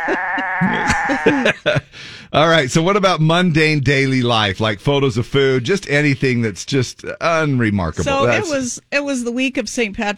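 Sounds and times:
sheep bleating: 0:00.0 - 0:01.4
laughter: 0:00.0 - 0:02.0, 0:08.0 - 0:08.6
speech: 0:00.0 - 0:10.1.

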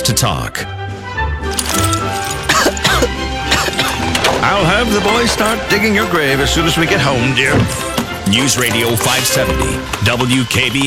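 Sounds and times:
speech: 0:00.1 - 0:02.2, 0:04.5 - 0:10.8
person coughing in harsh throaty bursts: 0:02.4 - 0:04.0.

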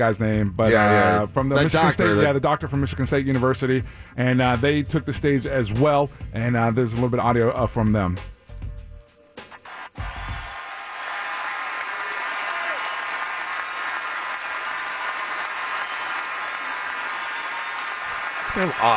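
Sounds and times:
speech: 0:00.0 - 0:08.4, 0:18.6 - 0:18.9
large audience applause at an awards show: 0:09.6 - 0:18.9.

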